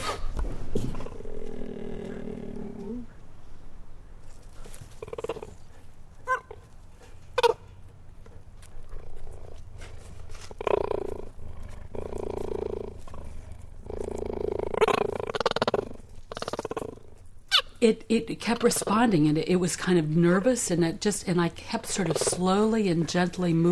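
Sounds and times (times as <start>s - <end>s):
cheetah growling and purring: 0.0s - 3.2s, 4.6s - 6.6s, 8.8s - 17.3s, 21.8s - 23.7s
speech: 17.8s - 23.7s.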